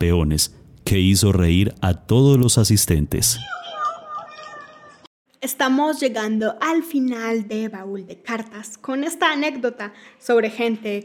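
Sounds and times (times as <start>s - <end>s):
speech: 0.0s - 3.6s, 5.4s - 11.0s
deep drawn-out meow of a champion cat in a cage: 3.4s - 5.0s.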